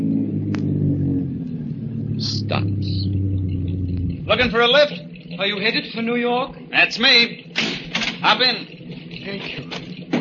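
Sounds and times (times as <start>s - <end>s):
car engine decelerating coming around a curve: 0.0s - 6.7s
speech: 4.3s - 7.4s, 8.2s - 9.8s.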